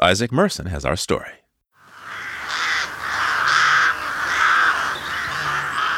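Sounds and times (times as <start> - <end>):
speech: 0.0 - 1.4
several crows cawing: 1.8 - 5.9.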